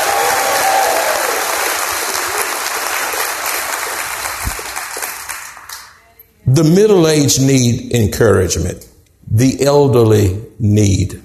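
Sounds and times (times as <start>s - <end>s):
audience clapping hands in praise: 0.0s - 6.0s
speech: 6.6s - 11.2s.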